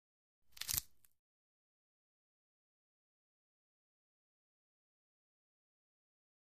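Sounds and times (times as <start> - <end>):
athletic tape stretching: 0.6 - 0.9.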